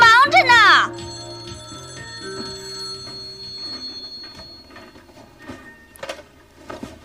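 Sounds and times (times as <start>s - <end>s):
steady tones: 0.0s - 5.6s
telephone ringing: 0.0s - 6.3s.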